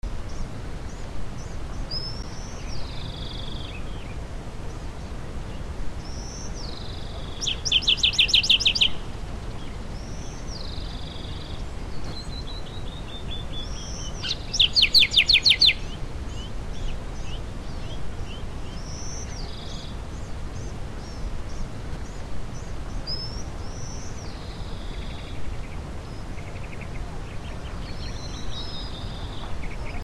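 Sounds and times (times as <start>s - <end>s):
birds at Palatki in Sedona Arizona: 0.0s - 30.0s.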